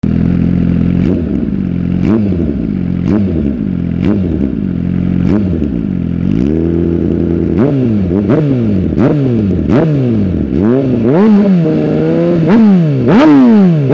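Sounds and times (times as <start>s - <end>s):
GSX-R1000 motorcycle exhaust system: 0.0s - 13.9s.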